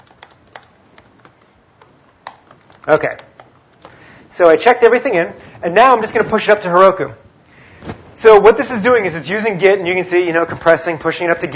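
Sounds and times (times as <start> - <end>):
typing a command on a computer keyboard: 0.0 - 4.0
speech: 2.8 - 3.3, 4.4 - 7.2, 8.2 - 11.5.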